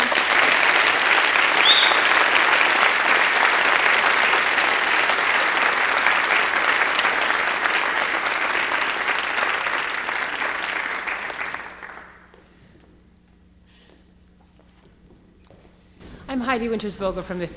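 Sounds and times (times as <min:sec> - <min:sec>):
audience applause for a group of students: 0:00.0 - 0:12.4
speech: 0:16.6 - 0:17.5.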